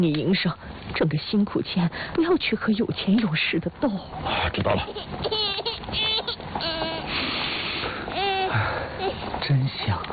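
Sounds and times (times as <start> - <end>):
speech: 0.0 - 6.8, 8.5 - 10.1
hiss: 0.0 - 10.1
girl crying: 4.9 - 7.1, 8.1 - 9.3.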